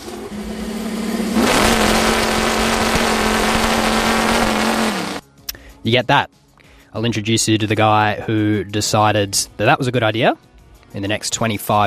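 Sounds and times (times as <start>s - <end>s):
V8-powered chainsaw engine idling and revving: 0.0s - 5.2s
speech: 5.8s - 11.8s.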